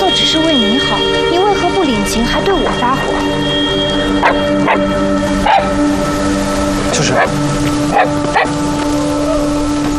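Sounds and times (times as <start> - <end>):
steady humming tone: 0.0 - 9.9
speech: 0.4 - 1.3, 2.1 - 3.3, 7.0 - 8.6
dog barking: 4.2 - 4.8, 5.4 - 5.7, 7.2 - 8.5.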